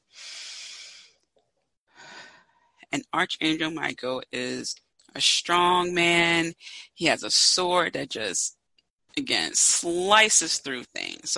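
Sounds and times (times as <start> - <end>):
deep breathing during a guided relaxation: 0.0 - 1.2
speech: 2.9 - 8.6, 9.2 - 11.3.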